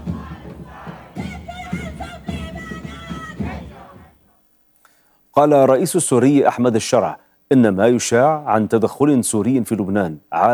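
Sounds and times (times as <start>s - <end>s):
crowd of protesters chanting slogans at a demonstration in Berlin: 0.0s - 4.4s
speech: 5.4s - 10.5s.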